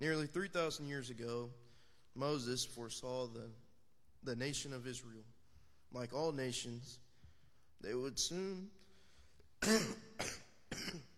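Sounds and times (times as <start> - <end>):
speech: 0.0 - 3.6, 4.2 - 7.0, 7.8 - 8.8, 9.6 - 11.1
person with a lingering cough coughing: 9.6 - 11.1.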